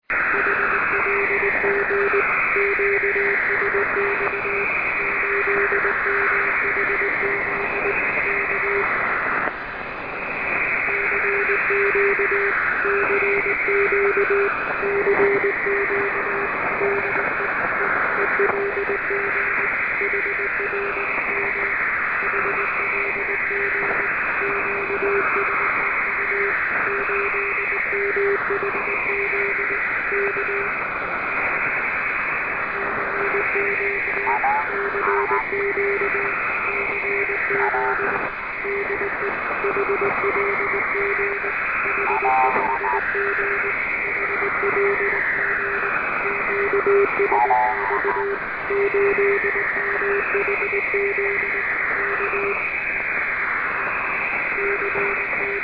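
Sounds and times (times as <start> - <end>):
radio signal on 8484 kHz: 0.1 - 55.6.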